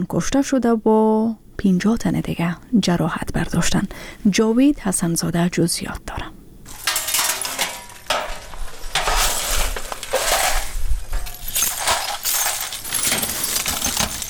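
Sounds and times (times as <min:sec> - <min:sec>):
speech: 0:00.0 - 0:06.4
broken glass being swept and gathered up in damaged homes in Kabul: 0:06.7 - 0:14.2
sharp clinking glass shards: 0:06.7 - 0:14.2.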